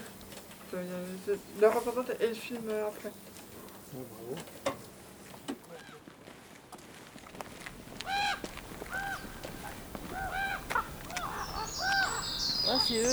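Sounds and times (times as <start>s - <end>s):
speech: 0.7s - 4.8s, 12.7s - 13.1s
crows cawing in harsh bursts: 7.5s - 13.1s.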